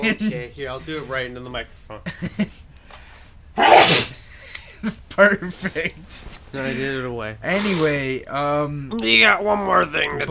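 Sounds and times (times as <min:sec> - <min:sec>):
speech: 0:00.0 - 0:02.6, 0:04.8 - 0:10.2
sneeze: 0:03.6 - 0:04.2.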